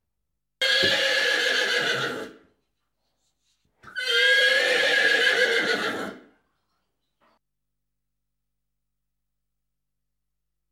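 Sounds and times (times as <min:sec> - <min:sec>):
horse whinnying: 0:00.6 - 0:02.4, 0:03.8 - 0:06.3.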